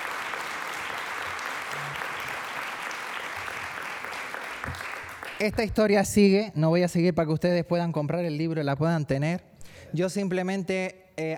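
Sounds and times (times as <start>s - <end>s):
audience applause: 0.0s - 5.5s
speech: 5.4s - 11.3s.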